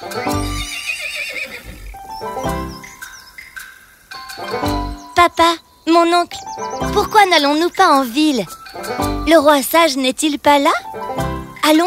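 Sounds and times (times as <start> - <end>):
young horse neighing: 0.3 - 2.2
speech: 5.2 - 10.8, 11.7 - 11.8.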